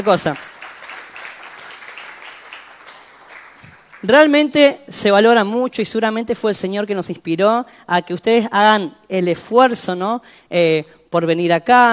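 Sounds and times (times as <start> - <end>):
speech: 0.0 - 0.5, 4.0 - 11.9
audience applauding at a church service: 0.0 - 4.1.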